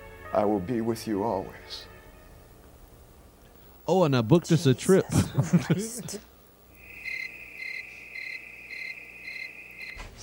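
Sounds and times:
faint hiss: 0.0s - 10.2s
speech: 0.3s - 1.9s, 3.9s - 6.3s
laughter: 4.8s - 6.3s
cricket chirping: 6.8s - 10.0s.

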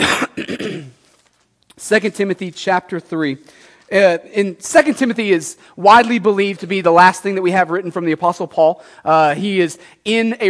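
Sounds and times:
loud cough: 0.0s - 1.0s
speech: 1.9s - 10.4s.

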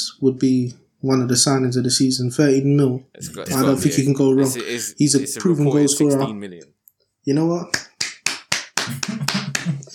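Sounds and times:
speech: 0.2s - 7.9s
person clapping hands: 7.7s - 9.9s.

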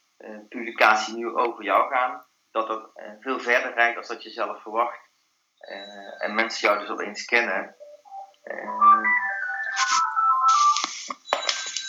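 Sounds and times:
speech: 0.2s - 5.0s, 5.6s - 7.8s, 8.4s - 9.0s
phone melodic electronic ringtone: 7.8s - 11.8s.

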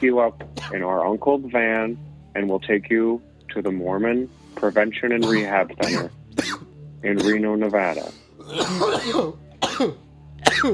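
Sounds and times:
speech: 0.0s - 10.7s
raspy throaty fit of coughing: 5.2s - 10.7s.

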